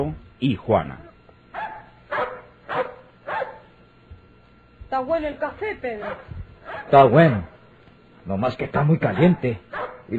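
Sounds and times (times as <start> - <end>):
speech: 0.0 - 1.1, 4.9 - 6.3, 6.9 - 7.6, 8.2 - 10.1
dog barking: 1.5 - 3.7, 6.0 - 7.6, 9.2 - 10.1.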